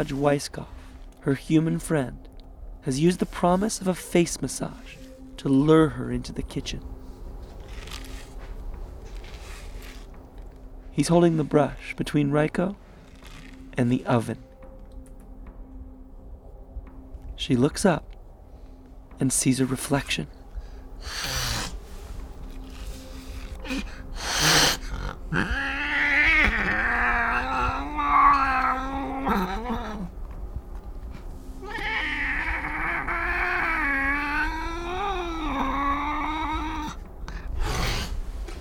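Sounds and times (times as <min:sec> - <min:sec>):
speech: 0:00.0 - 0:07.0, 0:11.0 - 0:12.8, 0:13.8 - 0:14.5, 0:17.4 - 0:18.1, 0:19.2 - 0:20.4, 0:21.0 - 0:21.3
cat yowling at mirror reflection: 0:21.0 - 0:21.8, 0:23.6 - 0:30.1, 0:31.6 - 0:37.0
cat snorting and hissing at mirror reflection: 0:21.0 - 0:22.0, 0:22.8 - 0:30.0, 0:37.6 - 0:38.3.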